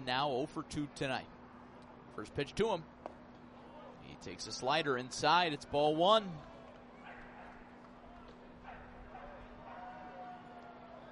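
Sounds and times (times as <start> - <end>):
speech: 0.0 - 1.4, 2.2 - 3.0, 4.1 - 6.5
dog barking: 7.0 - 7.6, 8.6 - 10.0.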